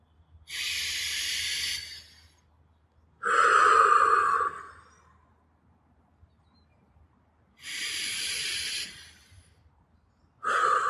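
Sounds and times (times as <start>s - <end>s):
slow deep breaths in and out during a breathing exercise: 0.5s - 2.5s, 3.2s - 5.4s, 7.6s - 9.8s, 10.4s - 10.8s.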